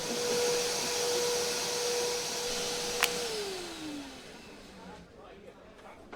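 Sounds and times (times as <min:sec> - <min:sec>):
vacuum cleaner running: 0:00.0 - 0:05.1
vacuum cleaner click as motor winds down: 0:02.8 - 0:03.8.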